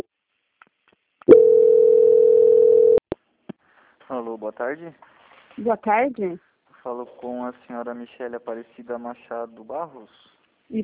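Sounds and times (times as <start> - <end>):
steady single-pitch telephone line tone during a call transfer: 1.3 - 3.0
speech: 4.1 - 10.8.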